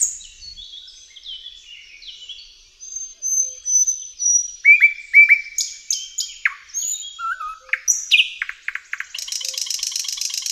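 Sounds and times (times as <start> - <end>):
thrush nightingale singing: 0.0 - 10.5.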